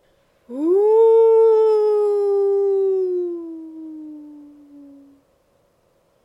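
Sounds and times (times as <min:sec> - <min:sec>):
wolf howling in the mountains: 0:00.5 - 0:05.2.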